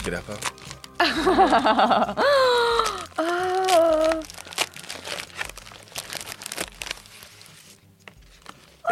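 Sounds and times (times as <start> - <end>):
paper envelope being torn open: 0.0 - 1.1, 2.8 - 8.8
speech: 0.1 - 3.4
laughter: 1.0 - 2.2.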